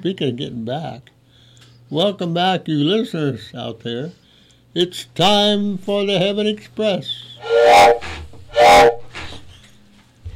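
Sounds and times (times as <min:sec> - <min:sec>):
speech: 0:00.0 - 0:01.2, 0:01.9 - 0:08.2
steam train whistle blasts: 0:07.3 - 0:09.4.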